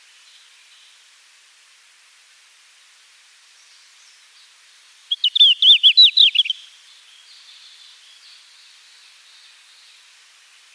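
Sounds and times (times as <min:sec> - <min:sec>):
Red-flanked bluetail singing: 0:05.1 - 0:06.6.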